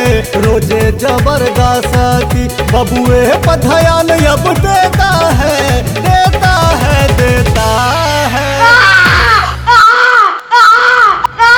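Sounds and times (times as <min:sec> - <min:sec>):
synth and percussion pop song music: 0:00.0 - 0:09.9
speech: 0:00.2 - 0:06.4
infant wailing: 0:08.6 - 0:11.5.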